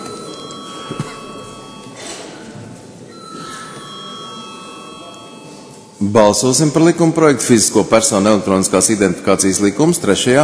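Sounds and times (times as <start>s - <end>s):
electric bell ringing in a parliament chamber before a vote: 0.0s - 2.0s, 3.1s - 6.0s
noisy parliament chamber: 0.0s - 10.4s
speech: 6.1s - 10.4s.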